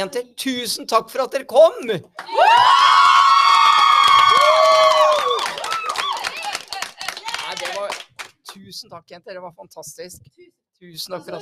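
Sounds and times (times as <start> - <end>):
speech: 0.0 - 3.0, 8.6 - 11.4
girls shouting excitedly: 2.2 - 7.8
group of girls screaming into microphones: 2.3 - 6.5.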